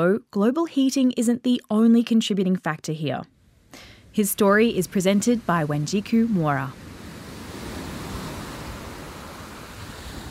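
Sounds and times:
speech: 0:00.0 - 0:06.9
ocean waves washing against the shore of Ghana's east coast: 0:03.5 - 0:10.3.

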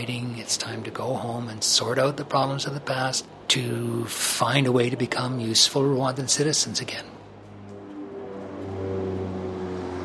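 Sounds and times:
speech: 0:00.0 - 0:07.2
plane passing overhead with engine drone: 0:00.0 - 0:10.0.

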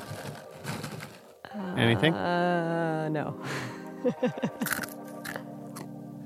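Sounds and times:
crunching on crunchy chickpeas: 0:00.0 - 0:01.4, 0:04.6 - 0:05.4
laughter: 0:01.6 - 0:04.8
speech: 0:01.6 - 0:04.9.

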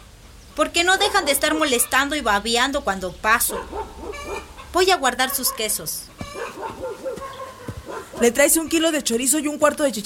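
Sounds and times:
speech: 0:00.6 - 0:07.1, 0:08.2 - 0:10.0
dog barking: 0:00.9 - 0:02.1, 0:03.4 - 0:08.4.

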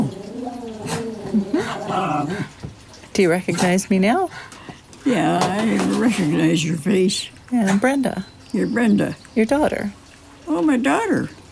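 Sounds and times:
dogs whining and whimpering: 0:00.0 - 0:02.6
speech: 0:01.3 - 0:02.6, 0:03.2 - 0:11.5.

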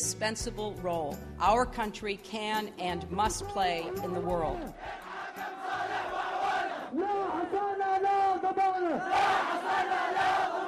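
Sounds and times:
speech: 0:00.2 - 0:05.0
angry protesters shouting together in Yemen: 0:04.8 - 0:10.6.

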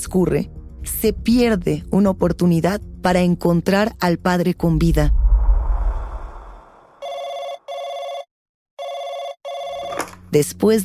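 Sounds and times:
speech: 0:00.0 - 0:05.2, 0:10.3 - 0:10.8
low rumble: 0:04.5 - 0:07.0
telephone bell ringing: 0:07.0 - 0:10.1.

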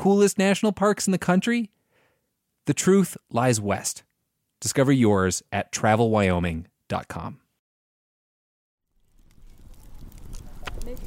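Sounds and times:
speech: 0:00.0 - 0:01.8, 0:02.6 - 0:07.4
campfire crackling with pops and snaps: 0:08.9 - 0:11.0.

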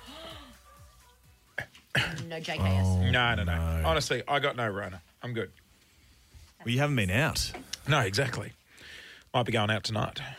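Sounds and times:
person coughing: 0:01.6 - 0:02.8
speech: 0:02.0 - 0:05.6, 0:06.6 - 0:08.6, 0:09.3 - 0:10.3
murmured voiced sound: 0:02.6 - 0:04.0.

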